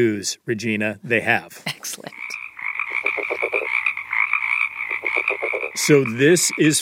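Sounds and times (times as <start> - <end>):
speech: 0.0 - 2.2, 5.8 - 6.8
California red-legged frog grunting: 2.1 - 6.8.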